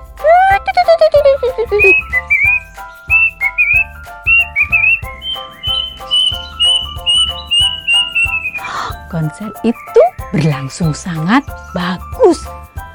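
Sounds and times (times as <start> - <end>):
steady soft low rhythmic beat: 0.0 - 12.9
person whistling an imitation of blackbird song: 1.6 - 9.1
speech: 9.6 - 12.6.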